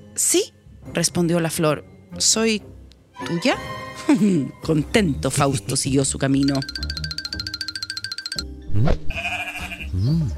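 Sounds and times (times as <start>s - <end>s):
speech: 0.2s - 7.1s, 8.4s - 9.4s, 10.0s - 10.3s
quick bright musical trill: 6.4s - 8.4s
sheep bleating: 9.0s - 10.0s.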